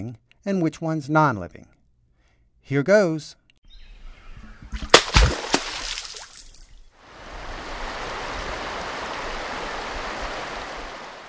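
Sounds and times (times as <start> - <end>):
speech: 0.0 - 1.8, 2.6 - 3.4
beaver slapping its tail on water: 4.8 - 6.4
river flowing: 7.0 - 11.2.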